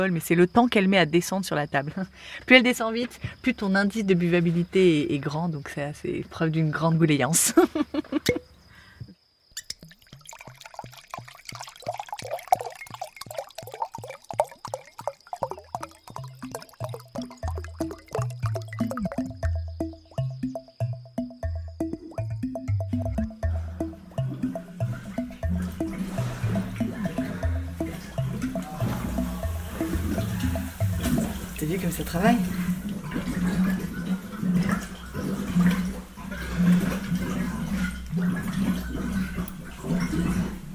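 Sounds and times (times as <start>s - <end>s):
speech: 0.0s - 8.4s
laughter: 7.5s - 8.3s
grape juice bubbling as it ferments in barrels in a wine cellar: 9.5s - 40.7s.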